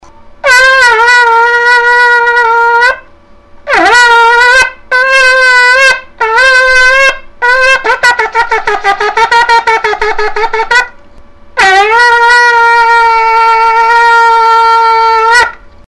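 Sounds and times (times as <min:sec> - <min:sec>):
shofar blowing: 0:00.4 - 0:11.0, 0:11.6 - 0:15.6.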